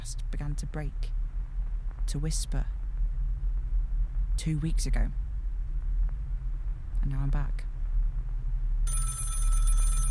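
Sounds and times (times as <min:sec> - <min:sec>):
low steady hum: 0:00.0 - 0:10.0
speech: 0:00.1 - 0:01.2, 0:02.1 - 0:02.8, 0:04.4 - 0:05.2, 0:07.0 - 0:07.7
telephone bell ringing: 0:08.9 - 0:10.0.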